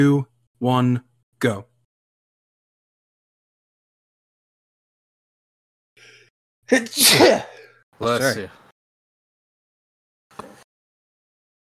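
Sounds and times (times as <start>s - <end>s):
speech: 0.0s - 1.7s, 6.7s - 8.6s
loud sneeze: 6.7s - 7.7s.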